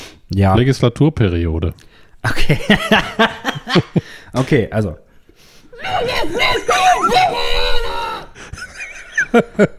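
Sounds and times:
speech: 0:00.4 - 0:05.0, 0:09.3 - 0:09.7
laughter: 0:02.3 - 0:04.2, 0:05.8 - 0:09.7
muffled strained scream into a cup: 0:05.8 - 0:08.4.

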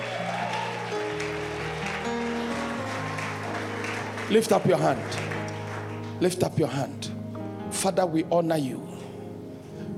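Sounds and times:
church crowd clapping during a sermon: 0:00.0 - 0:06.8
speech: 0:04.3 - 0:05.3, 0:06.2 - 0:07.1, 0:07.8 - 0:08.9.

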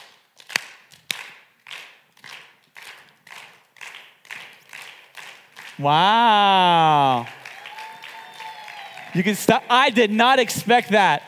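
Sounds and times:
sharp individual claps: 0:00.0 - 0:09.2
crowd clapping rhythmically: 0:00.0 - 0:11.2
speech: 0:05.8 - 0:07.4, 0:09.2 - 0:11.2.

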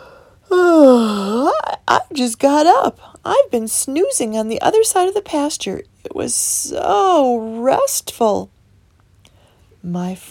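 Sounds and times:
person acting out a voiced yawn: 0:00.5 - 0:01.7
speech: 0:02.1 - 0:08.6, 0:09.8 - 0:10.2.

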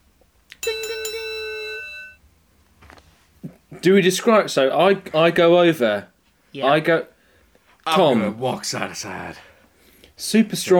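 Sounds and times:
referee's bright metallic bell ringing at a cage wrestling match: 0:00.6 - 0:02.2
speech: 0:03.8 - 0:07.1, 0:07.9 - 0:09.5, 0:10.2 - 0:10.7.

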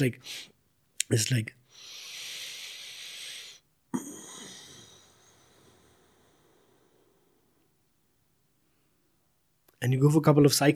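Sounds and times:
speech: 0:00.0 - 0:00.5, 0:01.1 - 0:02.0, 0:09.8 - 0:10.7
forceful bhastrika bellows breathing in sudarshan kriya practice: 0:00.2 - 0:00.6, 0:01.6 - 0:07.4.

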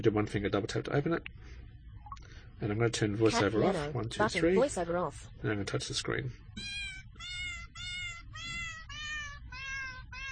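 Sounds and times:
speech: 0:00.0 - 0:01.6, 0:02.6 - 0:07.4
cat piano app playing synthetic cat meow notes: 0:06.6 - 0:10.2.

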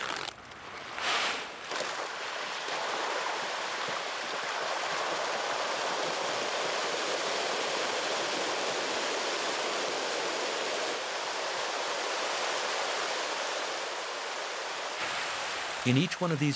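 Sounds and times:
pangasius catfish thrashing and splashing while feeding on pellet feed in a pond: 0:00.0 - 0:15.8
speech: 0:15.8 - 0:16.5.

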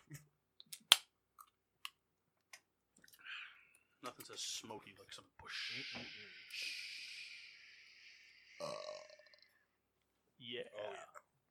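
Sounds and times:
speech: 0:04.2 - 0:06.9, 0:10.5 - 0:11.2
short burst of voiced sounds: 0:05.4 - 0:09.6
breathy hissing noise: 0:05.5 - 0:08.9
person burping loudly: 0:08.6 - 0:09.6, 0:10.6 - 0:11.3.

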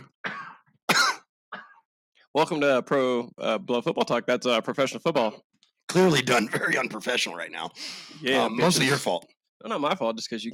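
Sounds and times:
person coughing into a microphone: 0:00.0 - 0:01.9, 0:06.3 - 0:07.0
speech: 0:02.3 - 0:10.5.

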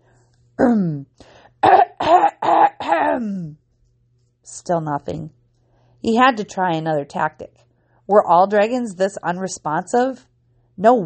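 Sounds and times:
man clearing his throat: 0:01.6 - 0:03.3
speech: 0:03.2 - 0:03.6, 0:04.5 - 0:05.4, 0:06.0 - 0:11.0.

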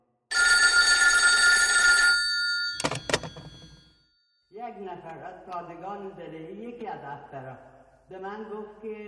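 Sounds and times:
old-style telephone bell ringing loudly: 0:00.3 - 0:04.4
sharp clattering knocks: 0:02.8 - 0:03.8
speech: 0:04.7 - 0:09.0.

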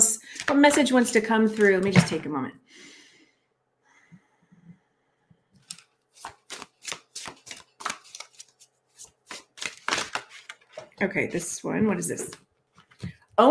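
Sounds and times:
speech: 0:00.5 - 0:02.9, 0:11.0 - 0:12.5
deck of message cards shuffled and handled: 0:01.4 - 0:02.0, 0:05.6 - 0:11.0.

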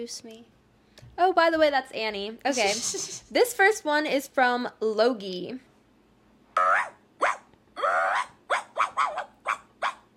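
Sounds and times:
speech: 0:00.0 - 0:05.7
person imitating a small chihuahua's yappy barking: 0:06.6 - 0:10.0.

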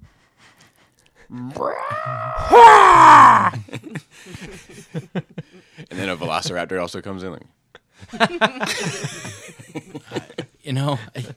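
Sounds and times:
speech: 0:01.3 - 0:11.3
person yelling a strained battle cry while fighting with a lightsaber: 0:01.4 - 0:03.6
laughter: 0:03.3 - 0:06.6, 0:08.0 - 0:11.3.

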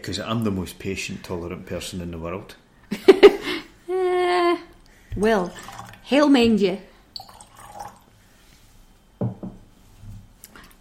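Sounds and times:
speech: 0:00.0 - 0:03.4, 0:05.2 - 0:06.9
water drops plinking into a glass of liquid: 0:07.2 - 0:07.9.

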